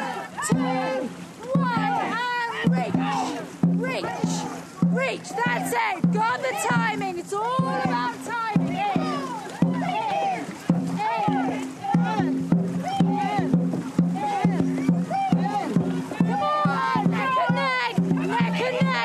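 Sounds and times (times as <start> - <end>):
crowd of excited voices calling and chattering: 0.0 - 19.0
oar strokes and splashes of two racing rowing boats: 0.0 - 19.0
speech: 0.5 - 1.3, 2.7 - 8.2.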